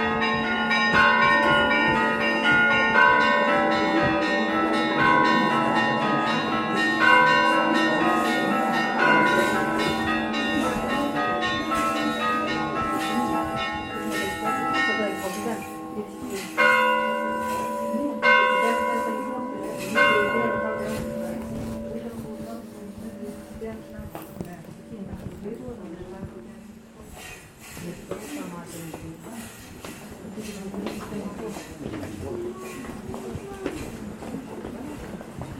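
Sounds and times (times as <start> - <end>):
monastery bells pealing during an Orthodox Easter ceremony in Greece: 0.0 - 26.8
voices and crowd murmur at a Greek monastery: 0.0 - 35.5.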